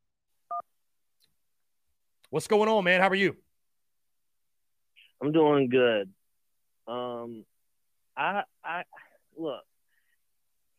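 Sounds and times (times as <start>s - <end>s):
two-pitch electronic telephone keypad tone for an incoming call: 0.5s - 0.7s
speech: 2.3s - 3.5s, 5.2s - 6.2s, 6.9s - 7.5s, 8.2s - 9.7s.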